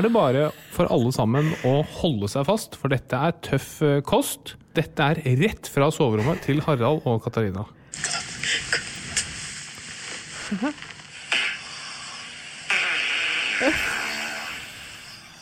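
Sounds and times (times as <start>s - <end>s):
speech: 0.0s - 8.9s, 10.5s - 10.8s, 13.6s - 13.9s
steady hiss: 7.9s - 15.4s
loud drawn-out squeaky farts from a person in a bedroom: 10.5s - 11.8s, 12.6s - 15.1s.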